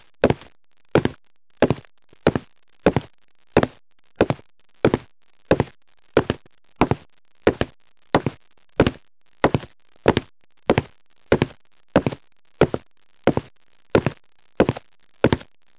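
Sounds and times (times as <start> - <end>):
footsteps: 0.2 - 15.5.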